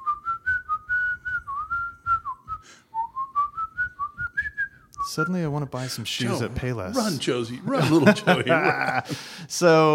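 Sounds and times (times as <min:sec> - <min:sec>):
person whistling a classical orchestral melody: 0:00.0 - 0:05.1
speech: 0:05.1 - 0:09.9
laughter: 0:06.1 - 0:09.4.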